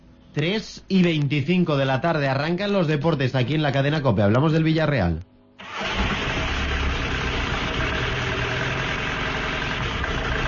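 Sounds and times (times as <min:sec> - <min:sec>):
speech: 0:00.4 - 0:05.3
car engine with a strange noise running roughly: 0:05.6 - 0:10.4.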